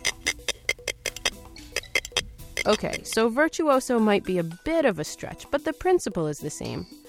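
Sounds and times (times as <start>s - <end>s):
spiny lobster rasping antenna across plate under its eyes: 0.0s - 3.2s
speech: 2.6s - 7.0s.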